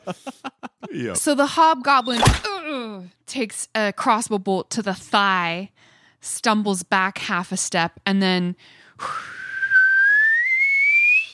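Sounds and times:
laughter: 0:00.0 - 0:01.2
speech: 0:00.0 - 0:09.3
person giving a long whistled signal: 0:09.0 - 0:11.3.

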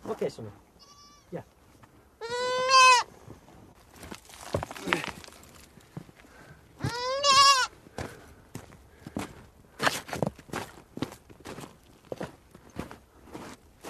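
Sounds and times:
speech: 0:00.3 - 0:01.6
goat bleating while taken out of a rock hole: 0:00.8 - 0:01.4, 0:02.2 - 0:03.1, 0:06.8 - 0:07.7
shuffling footsteps: 0:03.1 - 0:13.8.

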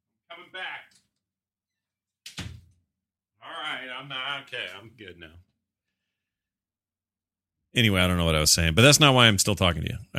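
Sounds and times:
door being pushed shut with a rattle: 0:02.3 - 0:02.8
speech: 0:04.0 - 0:05.5, 0:07.7 - 0:10.1.

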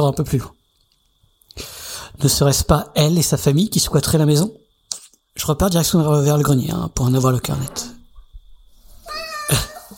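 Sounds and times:
speech: 0:00.0 - 0:00.6, 0:01.6 - 0:04.6, 0:05.4 - 0:08.0
faint steady whine: 0:00.0 - 0:09.9
cat meowing: 0:09.0 - 0:09.8.

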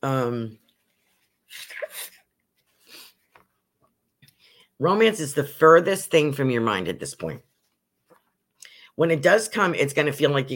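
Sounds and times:
speech: 0:00.0 - 0:00.6, 0:01.5 - 0:02.0, 0:04.8 - 0:07.5, 0:09.0 - 0:10.5
person sneezing after a voiced ah build-up: 0:01.5 - 0:02.2.

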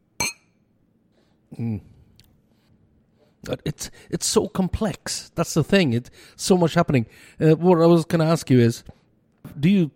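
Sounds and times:
beer glasses clinking in a toast: 0:00.2 - 0:00.5
speech: 0:01.5 - 0:02.0, 0:03.4 - 0:09.9.

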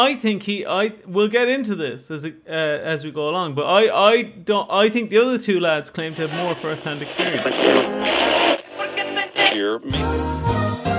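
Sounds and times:
speech: 0:00.0 - 0:08.6, 0:09.5 - 0:10.3
warbling distorted voice-like fragments: 0:05.9 - 0:10.0
garbled digital interference from a bad internet connection: 0:06.0 - 0:09.7.

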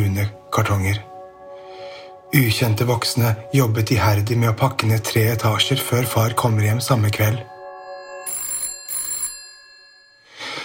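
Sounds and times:
speech: 0:00.2 - 0:01.1, 0:02.3 - 0:07.5
old-style telephone bell ringing with metallic trilling: 0:07.5 - 0:10.6.

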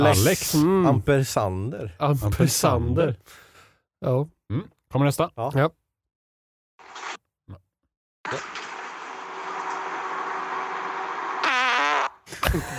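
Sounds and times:
speech: 0:00.0 - 0:03.4, 0:04.0 - 0:05.8, 0:06.9 - 0:07.6, 0:08.2 - 0:08.6, 0:12.5 - 0:12.7
tight strained fart recorded in a car: 0:08.3 - 0:12.3
laughter: 0:12.3 - 0:12.7.

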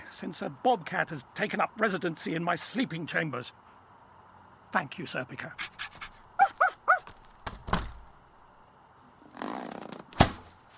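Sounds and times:
speech: 0:00.2 - 0:03.7, 0:04.7 - 0:05.9
dog panting: 0:05.6 - 0:07.1
dog yipping and barking: 0:06.0 - 0:07.1
dull thuds: 0:07.0 - 0:08.3, 0:10.0 - 0:10.6.

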